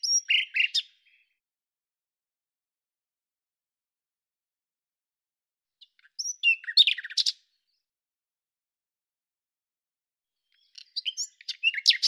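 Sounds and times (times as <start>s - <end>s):
common nightingale singing slurred whistles and clicking trills: 0.0s - 1.4s, 5.8s - 7.5s, 10.5s - 12.0s.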